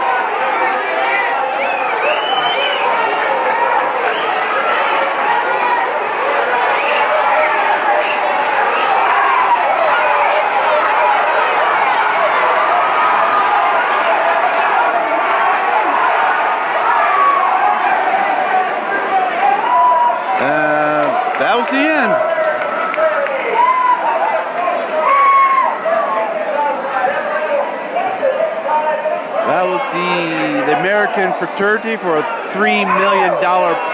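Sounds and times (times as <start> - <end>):
large crowd cheering at a race: 0.0 - 33.9
whistles: 1.5 - 3.0, 4.0 - 4.6, 6.6 - 7.2, 8.0 - 8.8
speech: 31.4 - 33.9.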